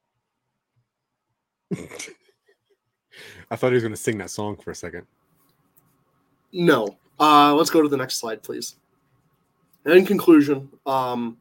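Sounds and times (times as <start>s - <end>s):
speech: 1.7s - 2.1s, 3.5s - 5.2s, 6.5s - 8.8s, 9.8s - 11.3s
harsh throat clearing: 1.7s - 2.2s.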